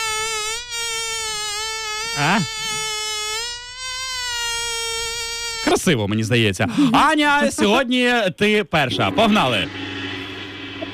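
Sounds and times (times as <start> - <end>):
mosquito buzzing: 0.0 - 6.0
speech: 2.2 - 2.7, 5.7 - 9.8.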